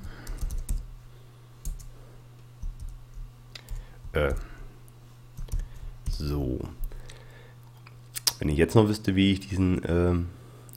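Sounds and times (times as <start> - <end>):
steady low electrical hum: 0.0 - 10.7
typing on a computer keyboard: 0.2 - 0.9, 2.6 - 4.4
speech: 4.2 - 4.5, 6.2 - 6.8, 8.4 - 10.4.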